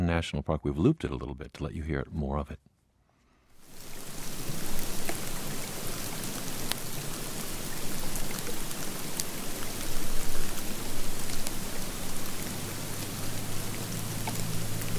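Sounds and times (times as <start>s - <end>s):
speech: 0.1s - 2.7s
heavy wet snowflakes falling on low bush branches in May snowstorm in Wyoming: 3.6s - 14.9s.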